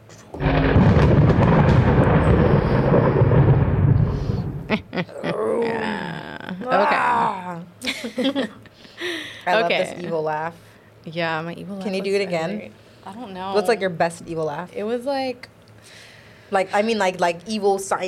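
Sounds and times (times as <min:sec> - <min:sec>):
loud booming thunder rumble sound effect: 0:00.4 - 0:04.9
laughter: 0:04.7 - 0:05.8, 0:06.6 - 0:09.3
speech: 0:08.2 - 0:08.6, 0:09.5 - 0:18.0.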